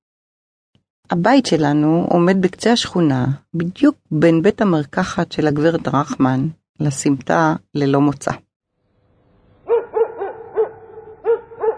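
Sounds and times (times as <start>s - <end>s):
speech: 1.1s - 8.4s
female family dog barking: 9.6s - 11.7s.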